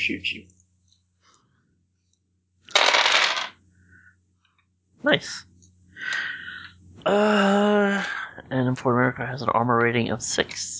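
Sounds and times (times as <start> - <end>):
speech: 0.0 - 0.6, 5.0 - 6.3, 7.0 - 10.7
dice rolled during a tabletop car-combat game: 2.7 - 3.6.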